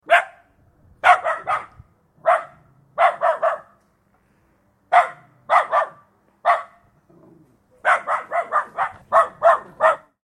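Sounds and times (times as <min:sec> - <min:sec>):
dog barking: 0:00.0 - 0:03.8, 0:04.9 - 0:06.8, 0:07.8 - 0:10.2.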